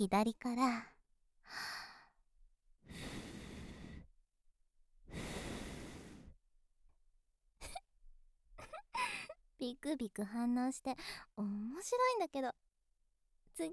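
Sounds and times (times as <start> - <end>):
speech: 0.0 - 0.9, 1.5 - 1.8, 9.6 - 12.6, 13.6 - 13.7
soft breath blowing from a person's mouth: 2.9 - 4.1, 5.1 - 6.4.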